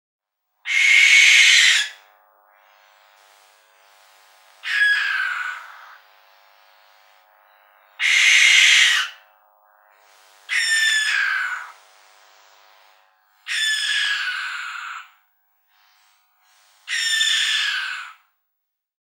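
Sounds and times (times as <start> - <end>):
tawny owl calling: 0.6 - 2.1, 4.6 - 6.1, 7.9 - 9.3, 10.5 - 11.8, 13.4 - 15.2, 16.8 - 18.2.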